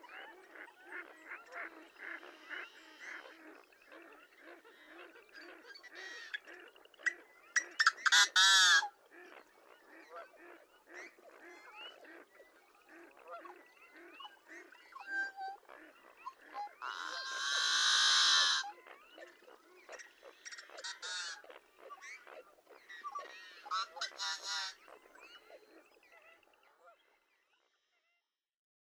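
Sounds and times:
yellow-headed blackbird song with buzzing burst and harsh clucks: 0.0 - 27.7.

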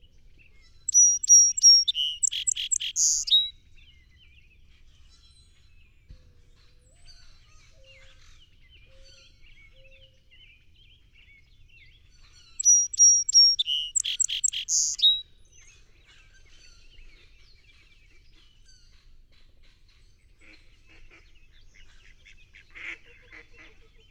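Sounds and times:
song sparrow song: 0.0 - 24.0
faint chirps: 0.9 - 3.5, 12.6 - 15.2.

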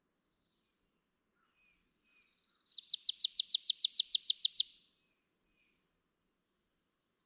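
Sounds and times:
chipping sparrow singing a rapid trill: 2.7 - 4.8.

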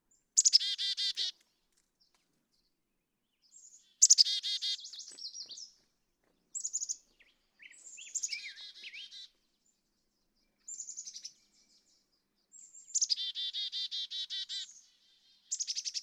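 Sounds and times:
Black-capped chickadee giving buzzy harsh dee notes and thin high chips: 0.4 - 1.4, 4.0 - 5.2, 7.6 - 9.3, 13.0 - 14.8.

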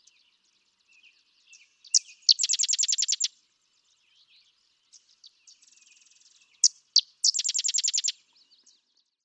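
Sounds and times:
sedge wren song with chips and chattering trill: 1.9 - 3.3, 6.6 - 8.2.

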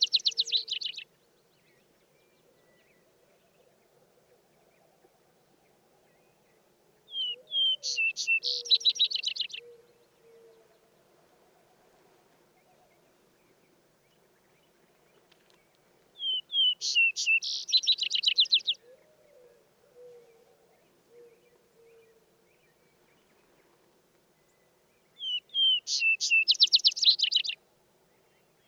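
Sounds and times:
Vesper sparrow singing with buzzy trill: 0.0 - 1.0, 7.2 - 9.6, 16.2 - 18.8, 25.2 - 27.6.

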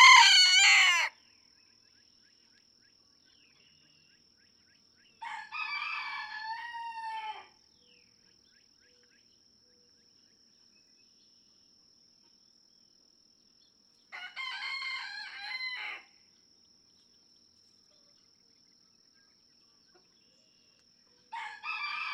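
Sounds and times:
red junglefowl rooster crowing in a barnyard: 0.0 - 1.1, 5.2 - 7.5, 14.2 - 16.1, 21.3 - 22.1.

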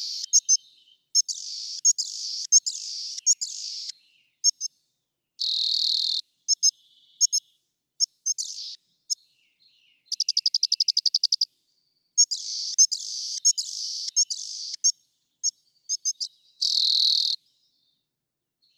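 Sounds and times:
rock wren song with sharp chips, trill and buzzy rasping notes: 0.0 - 4.7, 5.4 - 7.4, 8.0 - 9.2, 10.1 - 11.5, 12.2 - 17.4.

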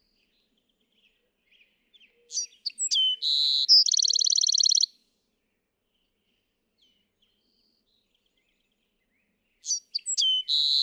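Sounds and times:
Bewick's wren song: 2.3 - 4.9, 9.6 - 10.8.

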